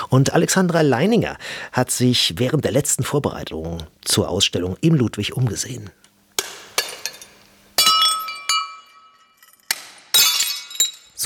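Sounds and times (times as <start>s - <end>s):
speech: 0.1s - 6.0s
hammer smashing porcelain cups and plates: 6.4s - 11.2s
bright ringing porcelain shards and tinkling debris: 6.8s - 11.2s.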